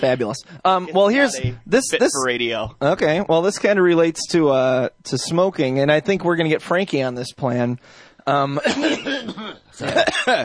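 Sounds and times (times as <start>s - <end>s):
speech: 0.0s - 10.4s
man clearing his throat: 8.6s - 10.4s.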